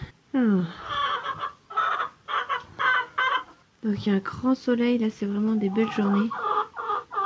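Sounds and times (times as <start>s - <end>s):
speech: 0.4s - 1.0s, 3.8s - 6.4s
hens clucking in a henhouse being cleaned: 0.7s - 3.7s, 5.1s - 7.2s.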